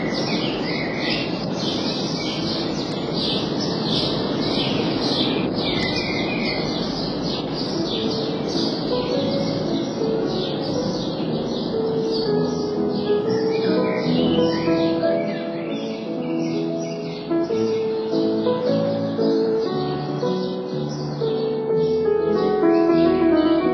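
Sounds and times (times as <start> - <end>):
birds singing in a garden: 0.0 - 23.7
steady loud wash: 0.0 - 23.7.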